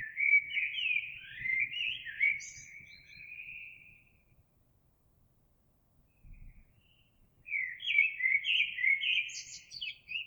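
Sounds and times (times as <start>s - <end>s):
Eurasian blackbird singing a fluting warbled phrase: 0.0s - 3.9s, 7.5s - 10.2s.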